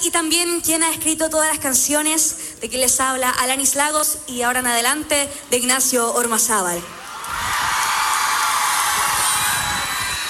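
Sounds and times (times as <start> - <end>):
speech: 0.0 - 7.5
concert audience screaming and cheering: 6.9 - 10.2.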